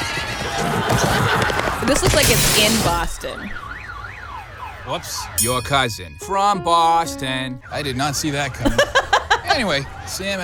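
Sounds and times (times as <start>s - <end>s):
horses whinnying: 0.0s - 2.0s
laughter: 0.4s - 2.1s, 8.5s - 10.4s
speech: 1.9s - 3.7s, 4.8s - 9.0s, 9.6s - 10.4s.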